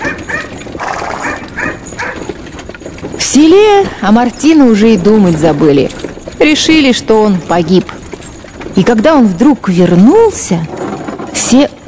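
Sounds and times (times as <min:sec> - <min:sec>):
dog barking: 0:00.0 - 0:00.5, 0:01.2 - 0:02.3
rough noise: 0:00.0 - 0:11.8
speech: 0:03.4 - 0:08.0, 0:08.8 - 0:10.7, 0:11.4 - 0:11.8.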